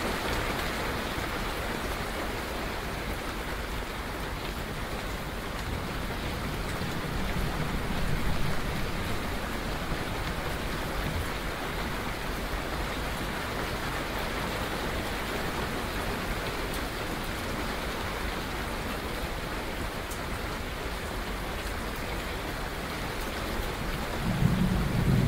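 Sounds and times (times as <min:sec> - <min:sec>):
dense rain: 0:00.0 - 0:25.2
low thunder rumble: 0:05.8 - 0:12.0, 0:24.1 - 0:25.2.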